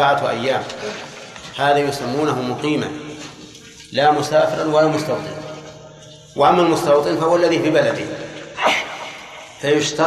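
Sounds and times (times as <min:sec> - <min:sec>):
speech: 0:00.0 - 0:03.1, 0:03.9 - 0:05.4, 0:06.4 - 0:08.8, 0:09.6 - 0:10.0
person sneezing: 0:08.6 - 0:09.4.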